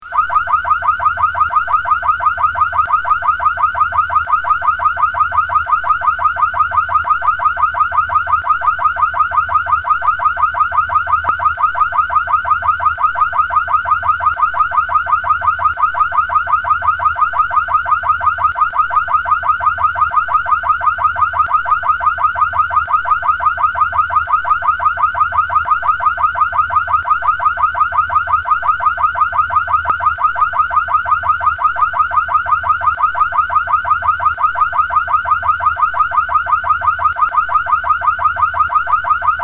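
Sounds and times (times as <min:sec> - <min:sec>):
broadcast room bell system alarm: 0:00.0 - 0:39.4.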